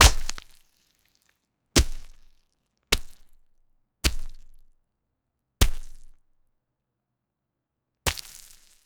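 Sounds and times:
thick organic flesh gore sound: 0.0s - 0.5s.

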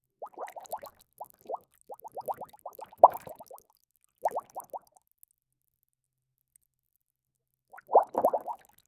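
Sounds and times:
liquid bubbling and boiling: 0.2s - 4.9s, 7.7s - 8.8s.

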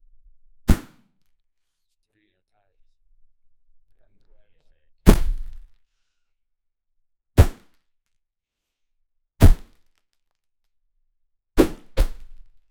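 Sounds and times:
person throwing a ball in sports: 0.7s - 1.0s, 5.1s - 5.6s, 11.6s - 12.4s.

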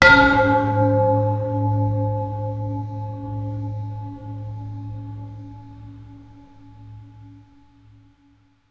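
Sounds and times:
deep resonant bell strike: 0.0s - 6.8s.

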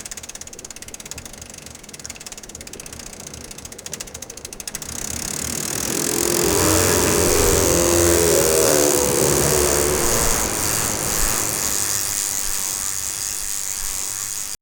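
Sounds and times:
motorbike engine running: 4.8s - 14.5s.

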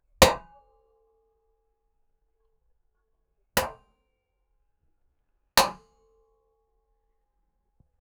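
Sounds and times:
metal ball hitting wood: 5.6s - 5.8s.

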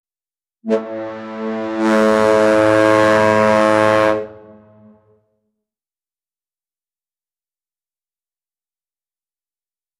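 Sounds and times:
cruise ship air horn: 0.6s - 5.4s.

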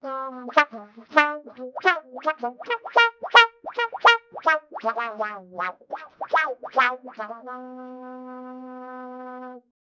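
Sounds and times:
cartoon style trumpet voice wah wah: 0.4s - 7.6s.

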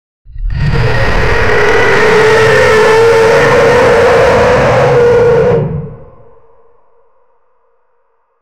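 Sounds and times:
high-pitched dinosaur roar: 0.3s - 6.2s.

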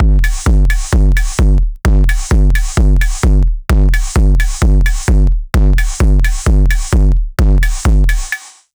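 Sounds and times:
electro music: 0.0s - 8.6s.

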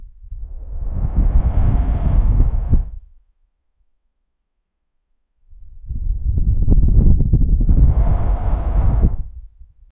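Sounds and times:
man-made whoosh of wind: 0.0s - 3.2s, 5.5s - 9.9s.

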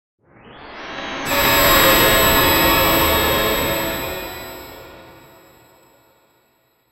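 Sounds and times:
glittering sound: 1.2s - 5.8s.

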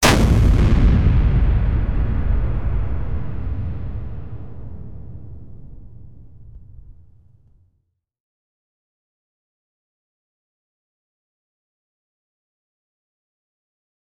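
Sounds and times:
gas tank explosion: 0.0s - 7.1s.

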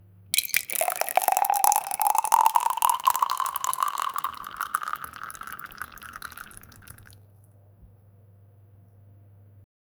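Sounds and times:
milk pouring: 0.4s - 7.2s.

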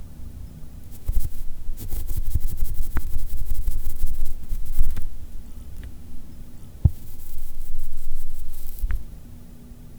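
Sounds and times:
fingers rustling fabric: 0.9s - 5.1s, 6.9s - 9.0s.

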